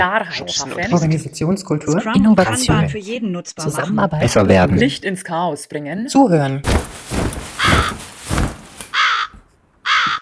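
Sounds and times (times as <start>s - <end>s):
speech: 0.0s - 7.8s
raven cawing: 7.6s - 8.2s, 8.9s - 10.2s.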